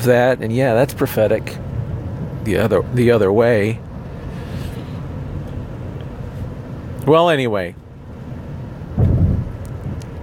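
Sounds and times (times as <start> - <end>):
speech: 0.0 - 1.7, 2.4 - 3.9, 7.1 - 7.8
low rumble of thunder: 8.9 - 10.2.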